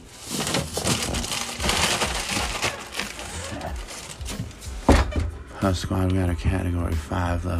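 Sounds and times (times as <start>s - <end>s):
plastic bag holding eggs crinkling as eggs are pulled out: 0.0s - 4.7s
speech: 5.6s - 7.5s.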